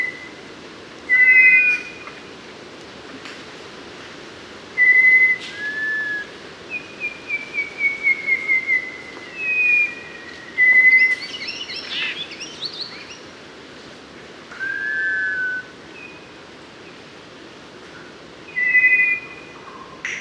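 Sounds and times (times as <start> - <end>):
Mangrove robin singing clear drawn-out whistles in Papua New Guinea: 1.1 - 2.1, 4.8 - 13.2, 14.5 - 16.3, 18.5 - 20.1.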